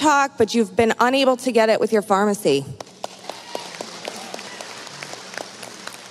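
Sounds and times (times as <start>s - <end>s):
speech: 0.0s - 2.8s
crowd applauding: 2.8s - 6.0s.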